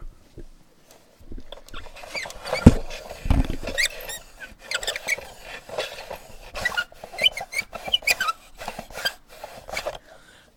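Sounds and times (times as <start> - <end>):
chair creaking and squeaking as it is adjusted for a haircut: 1.4 - 10.0.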